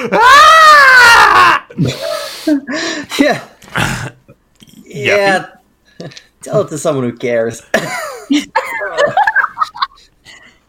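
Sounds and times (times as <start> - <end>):
speech: 0.0 - 0.4, 5.1 - 5.5, 6.5 - 8.5
voice imitating a wounded woman's scream: 0.1 - 1.6
laughter: 7.8 - 10.1.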